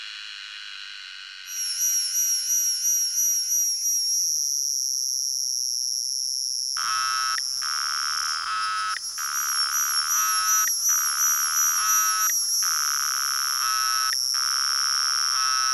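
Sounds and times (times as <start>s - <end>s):
cicada song with a high steady buzz: 6.8s - 15.7s
second cicada pulsing call in rapid regular bursts: 6.8s - 15.7s.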